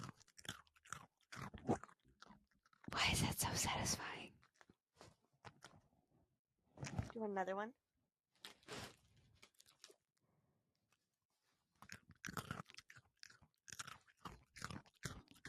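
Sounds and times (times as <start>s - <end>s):
loud chewing and crunching while eating: 0.0s - 3.0s, 4.0s - 5.9s, 9.4s - 10.1s, 10.9s - 15.4s
speech: 3.1s - 4.3s, 7.2s - 7.8s.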